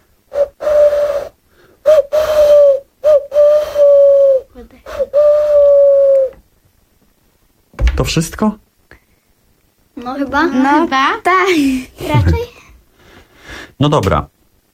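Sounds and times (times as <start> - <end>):
person imitating an owl hoot with the voice: 0.3 - 6.4
speech: 8.0 - 8.6, 10.2 - 12.5, 13.8 - 14.3.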